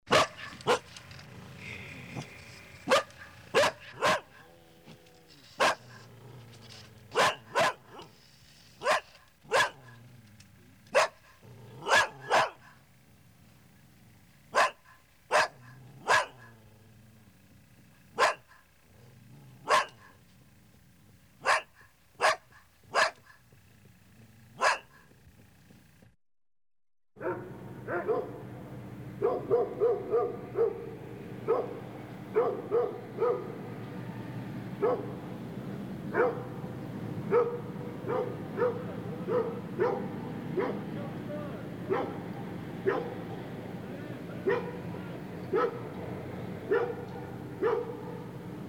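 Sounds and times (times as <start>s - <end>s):
dog barking: 0.1s - 0.9s, 2.8s - 4.6s, 5.6s - 6.1s, 7.1s - 8.1s, 8.8s - 10.0s, 10.9s - 12.8s, 14.5s - 16.6s, 18.1s - 18.7s, 19.6s - 20.2s, 21.4s - 23.4s, 24.6s - 25.1s, 27.2s - 28.4s, 29.2s - 33.6s, 34.8s - 35.2s, 36.1s - 36.6s, 37.3s - 40.9s, 41.9s - 43.2s, 44.4s - 44.8s, 45.4s - 45.9s, 46.6s - 48.3s.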